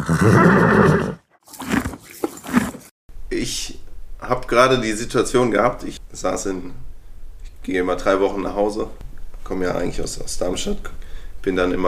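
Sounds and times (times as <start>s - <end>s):
speech: 0.0s - 1.1s, 4.3s - 6.9s, 7.6s - 11.8s
eventing horse neighing: 0.0s - 2.9s.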